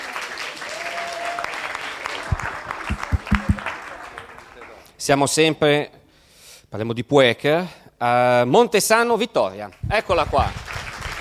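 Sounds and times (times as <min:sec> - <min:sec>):
audience applause: 0:00.0 - 0:04.6
speech: 0:05.0 - 0:06.0, 0:06.7 - 0:10.6.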